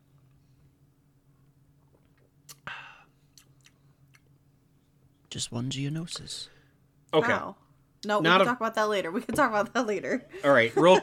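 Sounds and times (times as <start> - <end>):
low steady hum: 0.0 - 11.0
person sipping a drink: 1.8 - 4.4
small wet mouth clicks and swallows: 3.3 - 4.3
speech: 5.4 - 11.0.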